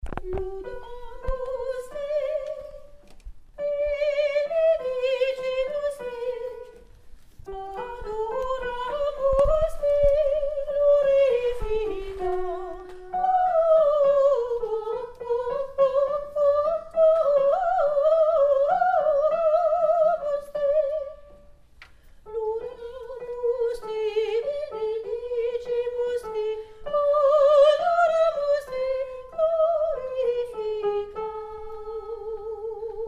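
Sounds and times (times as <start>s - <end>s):
soprano singing: 0.0s - 21.6s, 22.2s - 33.0s.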